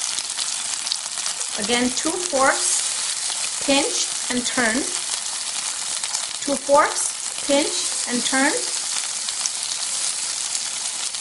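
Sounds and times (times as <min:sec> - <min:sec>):
pancakes frying in oil in a pan: 0:00.0 - 0:11.1
speech: 0:01.6 - 0:02.7, 0:03.7 - 0:05.0, 0:06.5 - 0:08.7.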